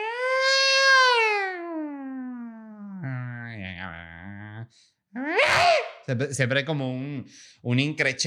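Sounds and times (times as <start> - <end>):
person's voice imitating yowling of cats in heat: 0.0 - 4.6, 5.2 - 6.1
speech: 6.1 - 8.2.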